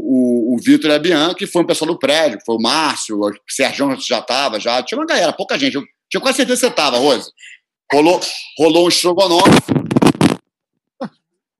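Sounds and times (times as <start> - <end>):
speech: 0.1 - 9.8, 11.0 - 11.2
person sneezing: 6.7 - 7.3.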